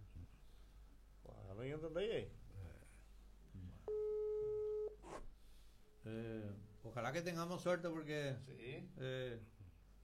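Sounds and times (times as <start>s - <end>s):
room noise: 0.0s - 10.0s
speech: 1.6s - 2.4s, 6.0s - 9.6s
single steady electronic telephone ringing tone on a call: 3.9s - 5.0s.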